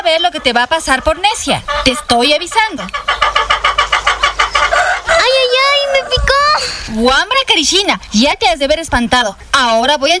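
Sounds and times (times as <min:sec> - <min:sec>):
speech: 0:00.0 - 0:03.6, 0:06.1 - 0:10.1
drawn-out wavering higher calls: 0:00.0 - 0:07.4
hens clucking: 0:00.0 - 0:10.0.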